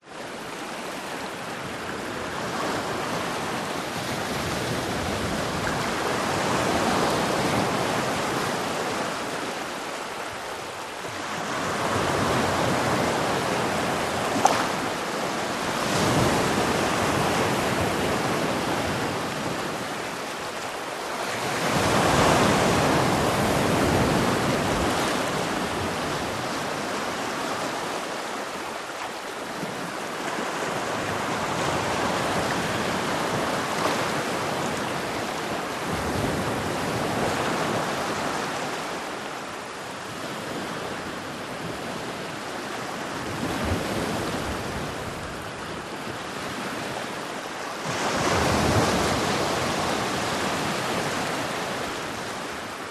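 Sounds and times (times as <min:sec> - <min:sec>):
gentle rolling waves on a black sand beach: 0:00.0 - 0:52.8.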